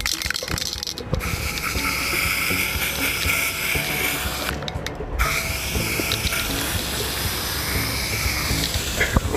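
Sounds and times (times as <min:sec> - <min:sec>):
nearly empty aerosol spray can spraying paint onto a street in Butzbach: 0:00.0 - 0:09.3.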